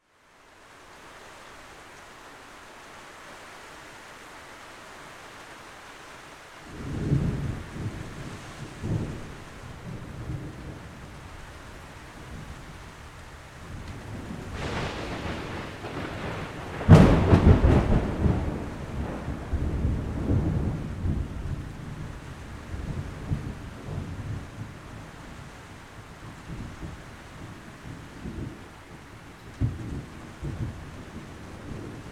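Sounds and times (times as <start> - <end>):
light rain: 0.0 - 32.1
loud thunder strikes overhead: 14.5 - 21.3.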